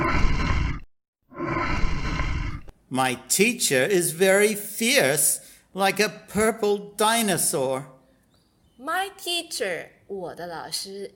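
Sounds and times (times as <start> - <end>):
lion roaring: 0.0 - 2.7
speech: 2.9 - 8.0, 8.8 - 11.1.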